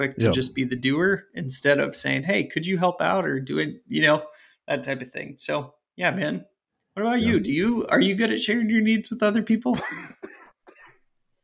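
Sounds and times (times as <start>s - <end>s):
speech: 0.0s - 10.3s
person coughing: 9.8s - 11.0s.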